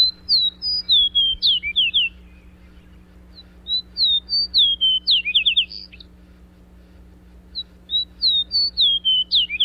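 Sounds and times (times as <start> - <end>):
fox sparrow singing sweet whistled notes: 0.0 - 6.2, 7.4 - 9.6
faint steady low hum: 0.0 - 9.6.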